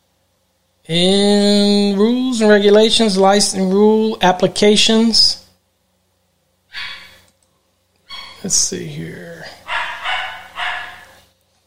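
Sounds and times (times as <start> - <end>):
speech: 0.8 - 1.6, 2.4 - 5.4, 8.4 - 9.6
dog barking: 6.7 - 7.2, 9.6 - 11.2.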